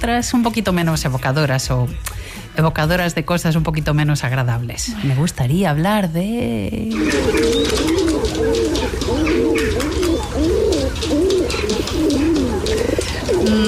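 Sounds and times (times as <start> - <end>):
speech: 0.0 - 9.2
steady busy urban ambience: 6.3 - 13.6
flock of city pigeons cooing: 6.9 - 13.6.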